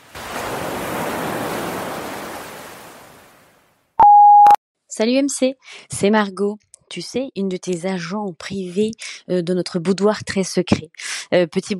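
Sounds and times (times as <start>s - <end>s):
ocean surf: 0.0s - 3.6s
answering machine electronic beep: 4.0s - 4.6s
speech: 5.0s - 11.7s.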